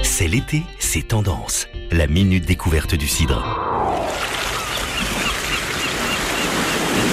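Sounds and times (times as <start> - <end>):
speech: 0.2 - 3.7
seaside wind: 3.3 - 7.1
seaside surf rushing: 3.6 - 7.1.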